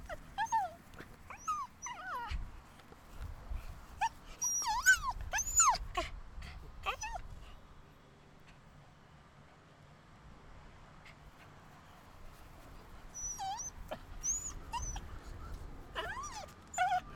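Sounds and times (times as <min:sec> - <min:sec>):
several dogs yelping: 0:00.0 - 0:02.3, 0:04.4 - 0:05.8, 0:13.2 - 0:15.1, 0:16.0 - 0:17.1
low background noise: 0:00.0 - 0:17.1.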